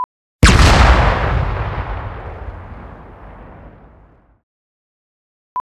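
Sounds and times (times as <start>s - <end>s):
laser explosion: 0.4s - 4.2s.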